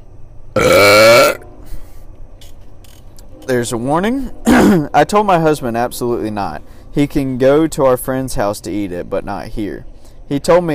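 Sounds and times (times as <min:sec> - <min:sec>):
loud deep raspy burp: 0:00.6 - 0:01.6, 0:04.4 - 0:04.9
speech: 0:03.5 - 0:10.7.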